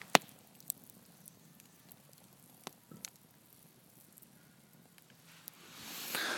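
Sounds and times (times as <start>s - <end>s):
campfire crackling outdoors in the woods: 0.0s - 6.3s
breathy rush: 5.7s - 6.3s.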